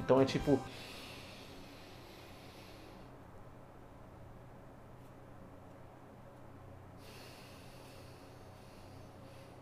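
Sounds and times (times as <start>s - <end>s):
speech: 0.1s - 1.0s
slow breathing in and out for a breathing exercise: 0.7s - 3.2s, 6.9s - 9.6s.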